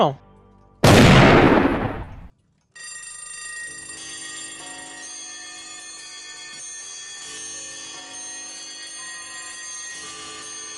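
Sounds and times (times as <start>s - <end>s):
speech: 0.0s - 0.2s
pistol shot: 0.8s - 2.3s
rumbling echo of pistol shot: 0.8s - 2.3s.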